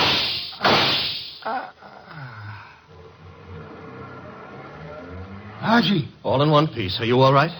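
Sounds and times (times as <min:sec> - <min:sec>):
gunshots from a window: 0:00.0 - 0:01.4
car driving off: 0:02.9 - 0:07.5
speech: 0:05.6 - 0:07.5.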